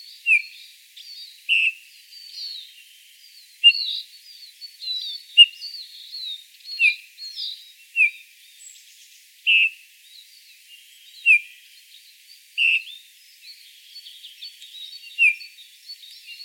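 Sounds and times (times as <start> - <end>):
faint high bird chatter: 0.0 - 16.4
Eurasian bullfinch Pyrrhula pyrrhula uttering soft falling piping calls: 0.3 - 0.5, 1.5 - 1.8, 8.0 - 8.2, 9.5 - 9.8, 11.2 - 11.4, 12.6 - 12.9, 15.2 - 15.4.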